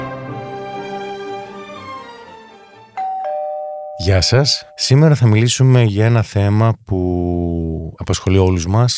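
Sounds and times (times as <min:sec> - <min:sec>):
doorbell chiming: 0:03.0 - 0:05.3
speech: 0:04.1 - 0:07.4, 0:08.0 - 0:08.9.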